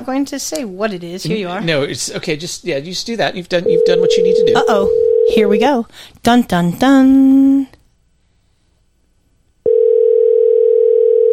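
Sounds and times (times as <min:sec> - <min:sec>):
speech: 0:00.0 - 0:07.8
loud steady telephone dial tone: 0:03.7 - 0:05.4, 0:09.7 - 0:11.3.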